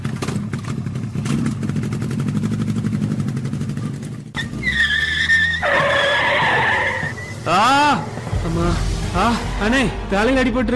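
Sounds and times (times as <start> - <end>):
motorbike ridden fast roaring and revving: 0.0 - 9.3
motorbike tires screeching in a long skid: 4.4 - 10.6.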